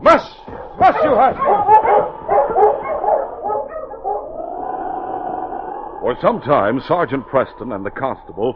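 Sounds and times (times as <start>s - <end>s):
dog barking: 0.4s - 4.3s
dog whining: 0.5s - 5.7s
speech: 0.9s - 1.8s, 6.1s - 8.5s.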